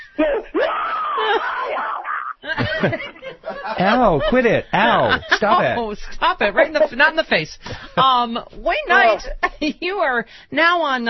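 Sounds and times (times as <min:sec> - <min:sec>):
speech: 0:00.2 - 0:00.6, 0:01.4 - 0:11.0
laughter: 0:00.2 - 0:08.2
exaggerated scream as a reaction to being shot: 0:00.6 - 0:02.4.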